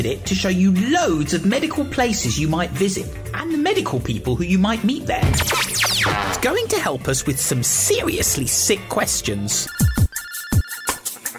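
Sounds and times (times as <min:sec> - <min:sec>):
speech: 0:00.0 - 0:10.0
video phone ringing with incoming call: 0:09.7 - 0:11.0.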